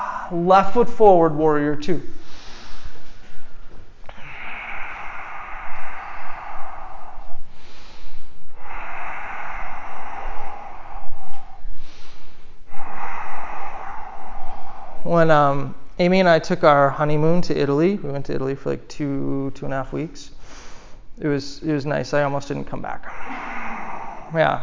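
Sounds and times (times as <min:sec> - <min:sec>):
deep breathing in and out during a yoga session: 0:00.0 - 0:01.2, 0:01.8 - 0:16.0, 0:20.2 - 0:21.2, 0:22.2 - 0:24.6
speech: 0:00.3 - 0:02.2, 0:15.2 - 0:20.4, 0:21.2 - 0:23.5, 0:24.3 - 0:24.6.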